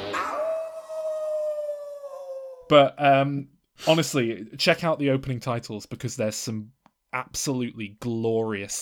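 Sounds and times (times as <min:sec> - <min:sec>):
person imitating a wolf howl: 0:00.1 - 0:02.7
speech: 0:02.7 - 0:08.8.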